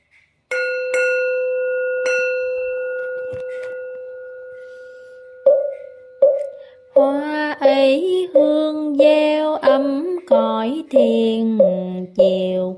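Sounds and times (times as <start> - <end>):
temple bell struck in a Zen setting: 0.5 - 7.1
speech: 7.0 - 12.7.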